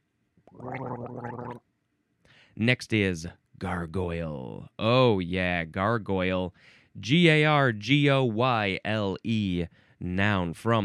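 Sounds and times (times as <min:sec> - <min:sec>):
person gargling: 0:00.5 - 0:01.6
speech: 0:02.6 - 0:10.8.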